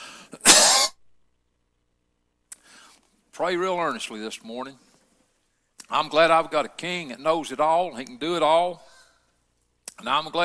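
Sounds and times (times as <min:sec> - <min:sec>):
person coughing: 0:00.3 - 0:01.0
speech: 0:03.4 - 0:04.9, 0:05.9 - 0:08.9, 0:10.0 - 0:10.4.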